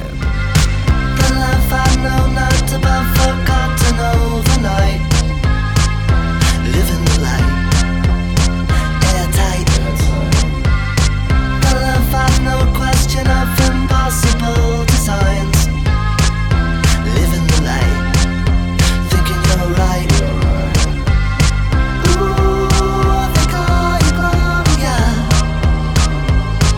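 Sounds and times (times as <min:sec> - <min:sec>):
rock song with drums, guitars, bass and sung vocal played from a recording: 0:00.0 - 0:26.7.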